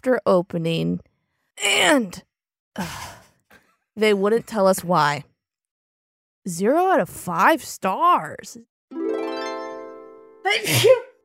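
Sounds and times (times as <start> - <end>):
speech: 0.0 - 3.2, 4.0 - 5.3, 6.4 - 8.7, 10.5 - 11.1
person sneezing: 10.5 - 11.2.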